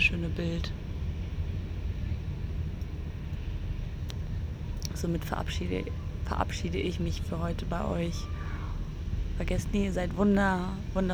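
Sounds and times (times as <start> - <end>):
wind rustling leaves of a small tree: 0.0 - 11.1
speech: 0.1 - 0.9, 5.0 - 8.3, 9.4 - 11.1.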